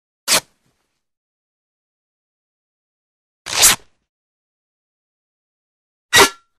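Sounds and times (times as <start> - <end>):
sword cutting cloth, light and quick: 0.3 - 0.6, 3.5 - 4.0, 6.2 - 6.4
sword ripping cloth: 0.3 - 0.6, 3.5 - 4.0.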